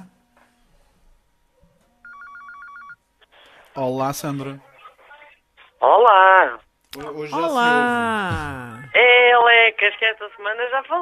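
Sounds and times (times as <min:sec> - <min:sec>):
incoming phone call ringing with rapid electronic trilling pulses: 0:02.0 - 0:03.1
speech: 0:03.8 - 0:04.7, 0:06.1 - 0:11.0.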